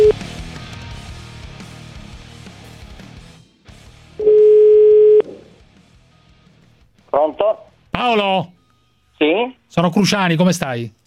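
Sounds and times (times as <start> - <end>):
loud steady telephone dial tone: 4.2 - 5.2
speech: 7.4 - 8.6, 9.7 - 11.0.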